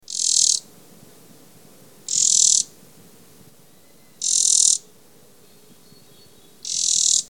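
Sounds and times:
Crescent-chested Warbler: 0.0 - 0.7, 2.1 - 2.8, 3.6 - 7.2.

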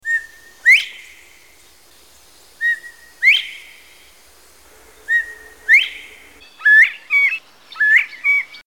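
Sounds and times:
Northern Bobwhite singing: 2.6 - 7.1.

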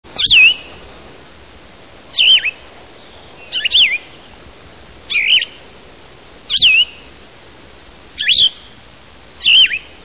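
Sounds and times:
Plumbeous Vireo: 0.1 - 1.1, 2.1 - 4.4, 5.1 - 5.6, 6.5 - 7.1, 8.2 - 8.8, 9.4 - 10.0.

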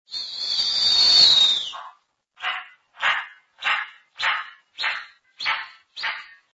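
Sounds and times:
Snowy Owl singing: 1.4 - 6.4.

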